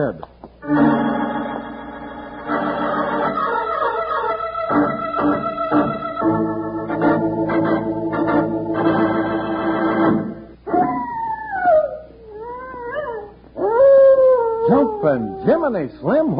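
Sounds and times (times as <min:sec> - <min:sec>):
speech: 0:00.0 - 0:00.9
orchestral music: 0:00.6 - 0:10.5
prairie wolf howling hungrily: 0:10.7 - 0:15.7.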